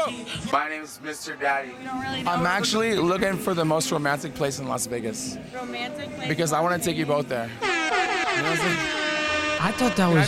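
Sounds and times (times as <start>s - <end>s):
speech: 0.1s - 10.2s
vehicle horn blaring on a Las Vegas street: 7.6s - 10.2s.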